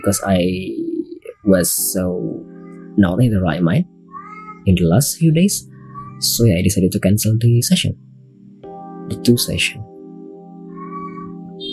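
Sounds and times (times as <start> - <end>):
speech: 0.0 - 0.8, 1.5 - 2.4, 3.0 - 4.0, 4.7 - 8.1, 9.1 - 10.0
cat meowing: 4.1 - 4.7, 5.7 - 6.3, 10.7 - 11.7.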